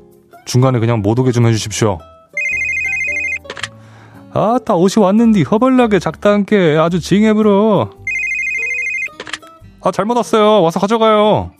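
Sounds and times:
speech: 0.5 - 2.1, 4.4 - 8.0, 9.8 - 11.5
telephone ringing: 2.4 - 3.7, 8.1 - 9.4.

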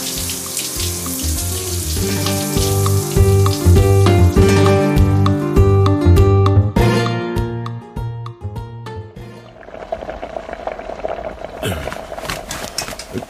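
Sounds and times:
shower spraying in a bathroom: 0.0 - 4.8, 9.6 - 13.2
rhythmic music: 0.0 - 9.0.

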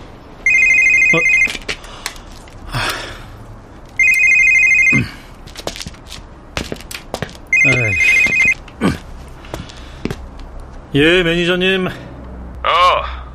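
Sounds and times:
light handling noises: 0.0 - 3.1, 3.7 - 10.9
phone ringing with a bright electronic ringtone: 0.4 - 1.6, 4.0 - 5.1, 7.5 - 8.6
speech: 1.1 - 1.4, 11.0 - 12.1.

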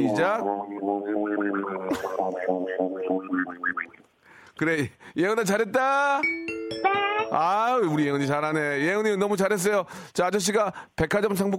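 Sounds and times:
speech: 0.0 - 4.0, 4.6 - 11.5
person imitating a duck farting while walking: 0.0 - 4.1.

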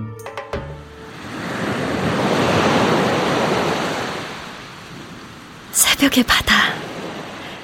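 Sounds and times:
ocean wave breaking on shore: 0.8 - 7.6
voice: 5.7 - 6.8.

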